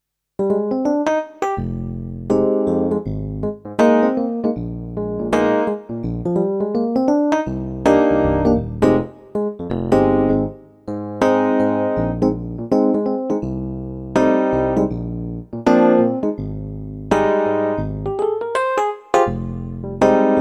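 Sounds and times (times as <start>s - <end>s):
electric piano: 0.4s - 20.3s.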